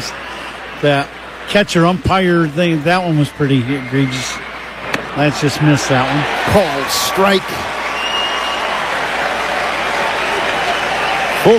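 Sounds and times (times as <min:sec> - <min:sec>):
baseball stadium crowd cheering and clapping: 0:00.0 - 0:11.5
speech: 0:00.8 - 0:04.4, 0:05.2 - 0:07.7.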